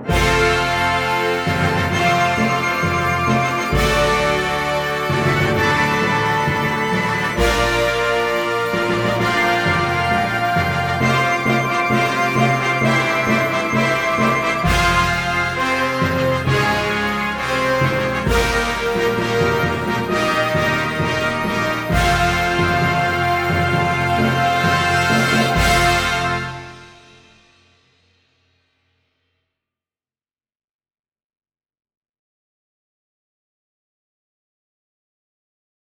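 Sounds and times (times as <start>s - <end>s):
horns playing note C in fifths: 0.1s - 27.4s.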